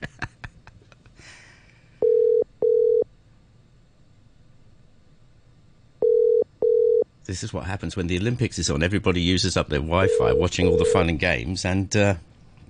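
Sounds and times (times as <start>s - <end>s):
telephone ringing tone on the line: 2.0s - 3.0s, 6.0s - 7.1s, 10.0s - 11.0s
speech: 7.3s - 12.3s.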